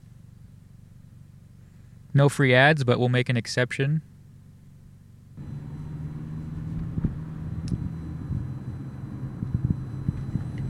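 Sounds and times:
speech: 2.2s - 4.1s
car driving along Richmond Street West through city streets: 5.1s - 10.6s.

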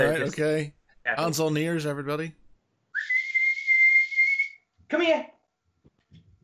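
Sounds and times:
speech: 0.0s - 2.4s, 4.9s - 5.3s
loud piercing whistle calling a hound: 3.0s - 4.7s.

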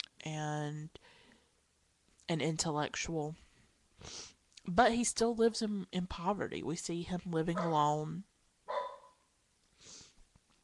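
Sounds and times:
speech: 0.2s - 1.2s, 2.3s - 3.4s, 4.0s - 8.3s
single sharp dog bark: 7.6s - 7.9s, 8.7s - 9.3s.

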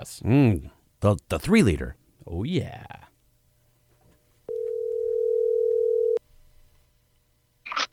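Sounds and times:
speech: 0.0s - 3.0s
telephone dial tone: 4.5s - 6.2s.

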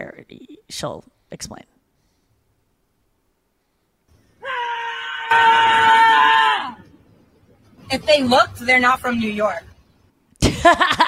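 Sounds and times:
speech: 0.3s - 1.7s, 5.3s - 5.9s, 7.9s - 9.7s, 10.6s - 11.0s
New York City street noise: 3.2s - 11.0s
woman screaming on a New York City street: 4.4s - 6.8s.

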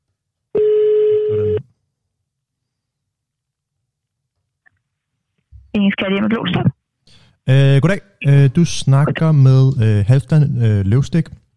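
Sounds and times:
telephone tone while a call is transferred: 0.6s - 1.6s
speech: 6.0s - 11.4s.

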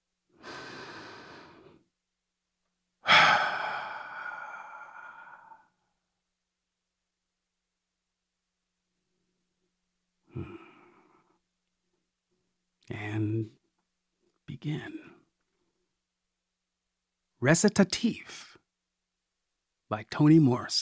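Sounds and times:
slow deep breathing before a story reading: 0.4s - 1.9s, 3.0s - 6.0s, 10.3s - 11.4s
brief breathy sound: 3.0s - 6.0s, 10.3s - 11.4s
speech: 12.9s - 13.6s, 14.6s - 15.0s, 17.4s - 18.5s, 19.9s - 20.8s.

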